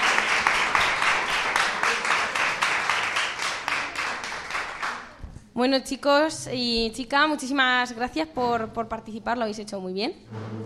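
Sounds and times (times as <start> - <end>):
audience applause: 0.0 - 5.2
speech: 5.6 - 10.6.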